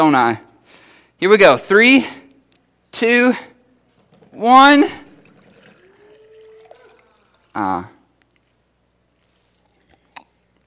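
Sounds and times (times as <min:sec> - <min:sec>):
speech: 0:00.0 - 0:00.5, 0:01.2 - 0:02.2, 0:02.9 - 0:03.5, 0:04.4 - 0:05.0, 0:07.6 - 0:07.9
kitchen tap water pouring into a container: 0:04.7 - 0:07.6.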